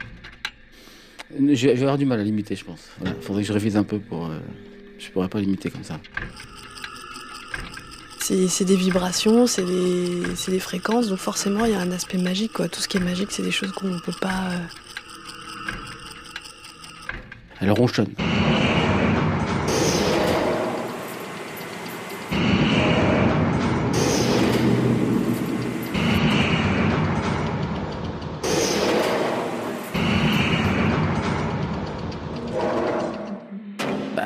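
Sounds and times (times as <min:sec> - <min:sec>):
speech: 0:01.3 - 0:06.7, 0:08.3 - 0:14.9, 0:17.6 - 0:18.4
machine engine with oil circulating running and rumbling: 0:06.1 - 0:17.6, 0:18.2 - 0:33.5.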